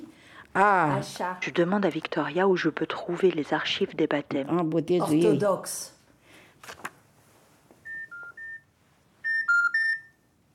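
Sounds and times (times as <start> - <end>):
speech: 0.5 - 6.0, 6.6 - 6.9
telephone dialing tones: 7.8 - 8.6, 9.2 - 10.1.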